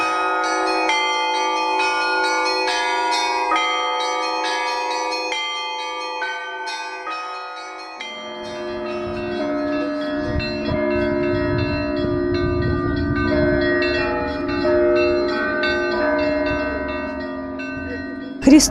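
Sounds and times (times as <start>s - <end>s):
layered high church bell chimes ringing together in a cathedral bell-ringing concert: 0.0s - 18.7s
deep booming bass church bells: 8.0s - 18.7s.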